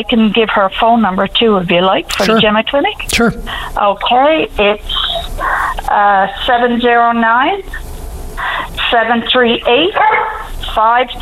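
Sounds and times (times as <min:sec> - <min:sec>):
speech: 0:00.0 - 0:11.2
dog barking and yipping: 0:10.0 - 0:10.5.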